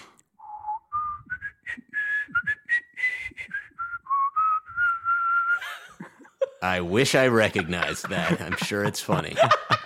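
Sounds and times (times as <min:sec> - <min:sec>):
person whistling a lilting melody: 0:00.4 - 0:05.7
laughter: 0:05.6 - 0:09.8
speech: 0:06.6 - 0:09.7.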